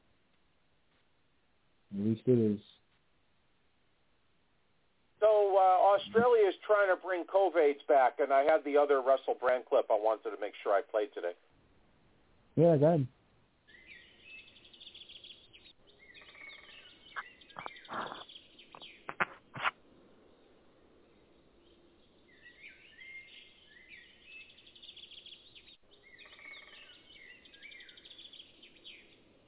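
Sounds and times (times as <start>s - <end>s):
speech: 2.0s - 2.7s, 6.0s - 11.5s, 12.6s - 13.2s
woodpeckers chirping and calling: 13.7s - 19.7s, 21.6s - 29.2s.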